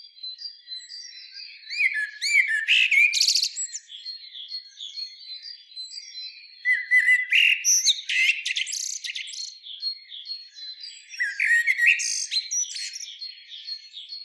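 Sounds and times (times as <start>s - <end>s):
Common blackbird Turdus merula twittering and chirping: 0.3s - 14.2s.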